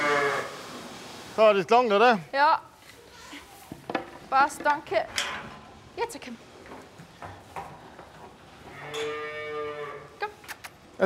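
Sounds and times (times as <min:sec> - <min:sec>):
cow mooing in a barn: 0:00.0 - 0:00.5, 0:08.6 - 0:10.2
speech: 0:01.4 - 0:02.7, 0:04.3 - 0:05.3, 0:06.0 - 0:06.5, 0:08.9 - 0:09.3
soft knocks and rustles in a barn: 0:03.6 - 0:05.8, 0:06.5 - 0:09.1.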